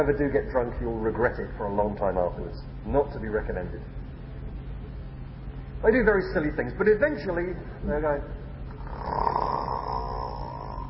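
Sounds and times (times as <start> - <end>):
speech: 0.0 - 4.0, 5.8 - 8.4
person imitating snoring of a drunk person: 8.8 - 10.8.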